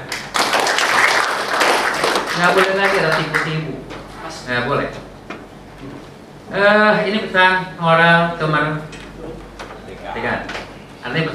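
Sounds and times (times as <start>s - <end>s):
audience applause: 0.0s - 3.7s
speech: 2.4s - 5.0s, 5.8s - 9.0s, 10.1s - 11.3s.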